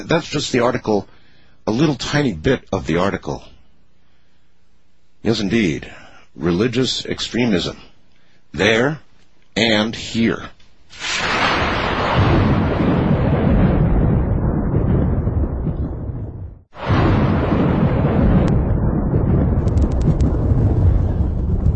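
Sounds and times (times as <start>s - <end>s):
speech: 0.0s - 1.1s, 1.7s - 3.5s, 5.2s - 7.9s, 8.5s - 9.0s, 9.6s - 11.4s
long loud rolls of thunder: 11.0s - 21.7s.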